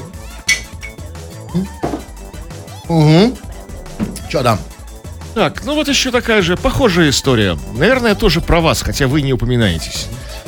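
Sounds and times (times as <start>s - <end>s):
glasses clinking in a toast: 0.4s - 1.1s
speech: 1.5s - 2.0s, 2.9s - 3.4s, 4.3s - 4.7s, 5.4s - 10.2s.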